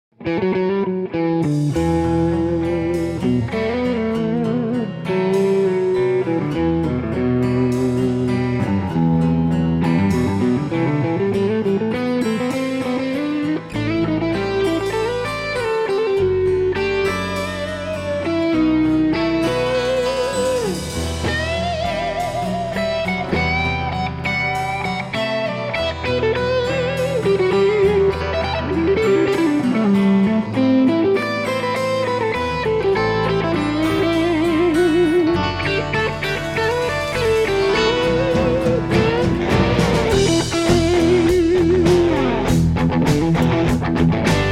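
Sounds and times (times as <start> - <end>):
Heritage H150 guitar with ThroBak SLE 101 MXV pickup set: 0.0 - 44.4.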